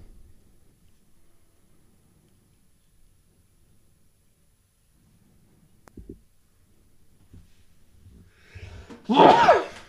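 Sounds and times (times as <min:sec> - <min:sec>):
person sneezing: 0:09.1 - 0:09.8.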